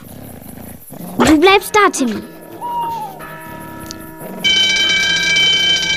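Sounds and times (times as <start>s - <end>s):
faint tonal humming: 0.0s - 5.9s
speech: 1.3s - 2.3s
loud steady ringing electronic alarm tone: 1.4s - 5.9s.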